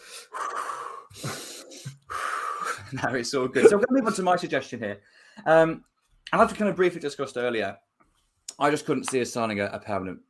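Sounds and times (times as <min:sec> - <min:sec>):
slow deep breathing as a calming breathing exercise: 0:00.0 - 0:02.9, 0:05.0 - 0:05.4
speech: 0:02.9 - 0:07.9, 0:08.6 - 0:10.2.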